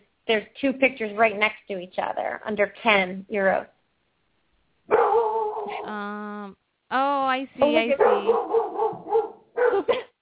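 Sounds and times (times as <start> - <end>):
speech: 0.3 - 3.8, 5.7 - 8.7
dog barking: 4.9 - 5.9, 7.9 - 10.1.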